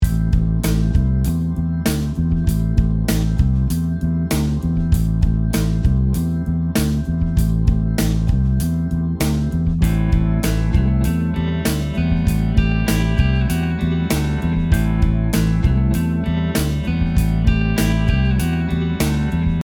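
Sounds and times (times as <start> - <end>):
rock bass riffs in pentatonic scale: 0.0 - 19.6.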